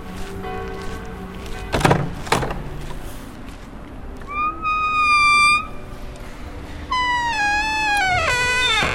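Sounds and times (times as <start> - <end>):
heavy solid wooden chapel door hinges creaking: 4.3 - 5.7, 6.9 - 8.9.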